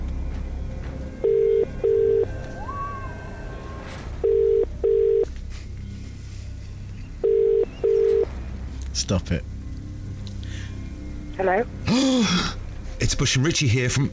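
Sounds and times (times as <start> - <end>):
low hum: 0.0 - 14.1
telephone line ringback tones: 1.2 - 2.4, 4.2 - 5.3, 7.2 - 8.3
speech: 9.1 - 9.6, 11.4 - 14.1.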